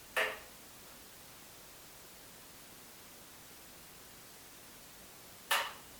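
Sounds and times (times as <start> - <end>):
knocks: 0.2 - 0.5, 5.5 - 5.8.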